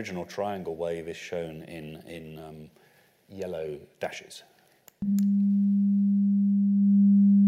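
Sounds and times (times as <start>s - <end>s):
speech: 0.0s - 5.6s
pure sine wave tone: 5.0s - 7.4s.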